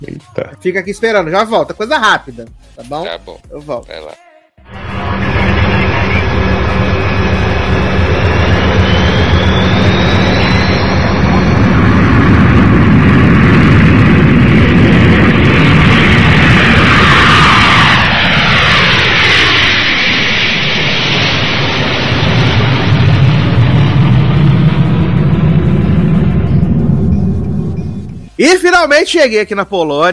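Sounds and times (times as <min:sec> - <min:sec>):
speech: 0:00.0 - 0:05.4, 0:28.4 - 0:30.1
airplane engine roar in flight to Kraków, Poland: 0:04.6 - 0:28.5.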